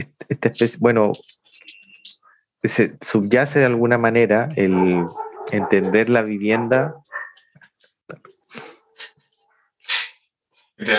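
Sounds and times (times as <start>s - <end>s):
speech: 0.0s - 1.8s, 2.6s - 7.0s, 10.8s - 10.9s
dogs barking: 4.6s - 7.6s
dog yips and huffs: 7.1s - 7.5s.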